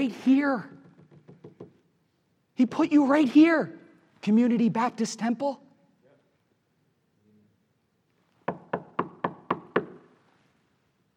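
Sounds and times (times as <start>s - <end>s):
speech: 0.0s - 0.8s, 2.6s - 5.6s
knuckles knocking on a wooden door: 0.8s - 1.8s, 8.4s - 10.1s.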